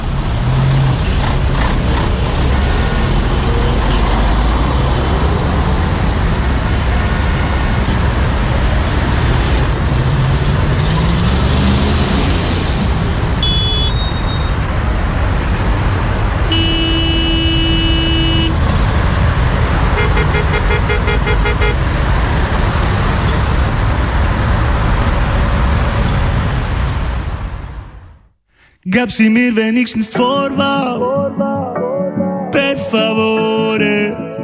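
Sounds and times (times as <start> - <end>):
cars and trucks rumbling in a city traffic jam: 0.0 - 28.2
horn-like tone: 13.4 - 14.6, 16.5 - 18.6, 19.9 - 21.9
speech: 29.0 - 31.8, 32.6 - 34.3.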